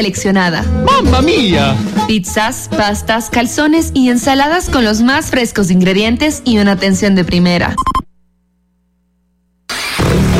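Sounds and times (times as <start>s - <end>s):
speech: 0.0s - 8.0s
CF Moto motorcycle engine starting: 9.7s - 10.3s.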